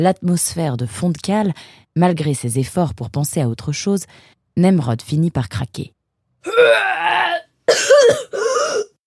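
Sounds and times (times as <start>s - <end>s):
speech: 0.0s - 6.9s
person retching from seasickness aboard a boat: 6.5s - 8.4s.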